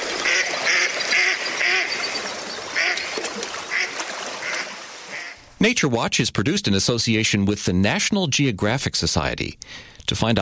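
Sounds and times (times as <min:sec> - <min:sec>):
steady outdoor hiss: 0:00.0 - 0:10.3
mallard duck quacking: 0:00.2 - 0:02.2, 0:02.8 - 0:03.1, 0:03.7 - 0:05.4
speech: 0:05.6 - 0:10.3.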